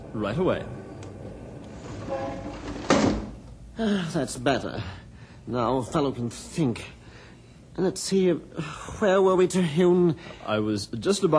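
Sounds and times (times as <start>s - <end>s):
faint hum: 0.0s - 11.3s
speech: 0.2s - 0.8s, 3.8s - 7.0s, 7.8s - 11.3s
window sliding shut with a thump: 1.7s - 3.4s.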